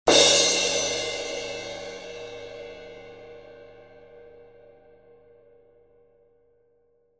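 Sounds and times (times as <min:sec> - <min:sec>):
18in fast crash cymbal: 0:00.1 - 0:05.1.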